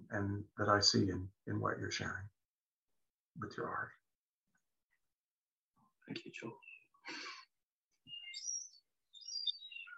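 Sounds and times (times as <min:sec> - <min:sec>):
speech: 0:00.1 - 0:02.4, 0:03.4 - 0:04.0, 0:06.1 - 0:07.3
seagulls calling: 0:08.1 - 0:09.9.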